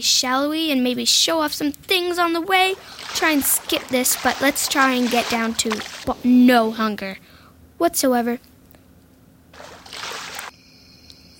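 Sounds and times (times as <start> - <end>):
speech: 0.0 - 8.5
water splashing: 2.2 - 6.8, 9.6 - 10.5
faint steady high tone: 10.6 - 11.3.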